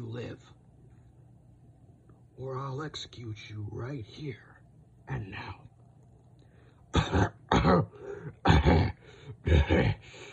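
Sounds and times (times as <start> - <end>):
speech: 0.2 - 0.6, 2.4 - 4.5, 5.1 - 5.7, 7.0 - 8.8, 9.4 - 10.3
man coughing up black blood: 6.9 - 10.1.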